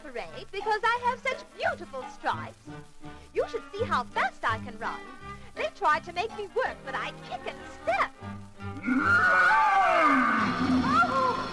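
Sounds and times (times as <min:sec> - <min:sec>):
speech: 0:00.1 - 0:02.9, 0:03.8 - 0:10.2
lion roaring: 0:08.8 - 0:11.5.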